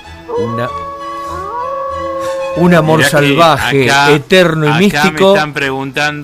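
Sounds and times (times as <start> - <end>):
speech: 0.3 - 0.9, 2.6 - 6.2
wolf howling in the cold under a partial eclipse: 0.3 - 3.7.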